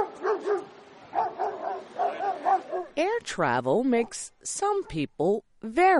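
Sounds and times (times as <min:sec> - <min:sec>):
dog barking in short yappy bursts: 0:00.0 - 0:03.0
speech: 0:03.3 - 0:05.9.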